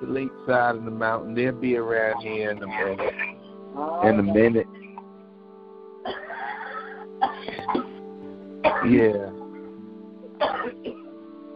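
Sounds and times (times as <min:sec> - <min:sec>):
speech: 0:00.0 - 0:04.8, 0:08.8 - 0:09.4
person clearing throat: 0:04.0 - 0:04.5, 0:06.1 - 0:08.0, 0:08.6 - 0:09.3, 0:10.4 - 0:11.0.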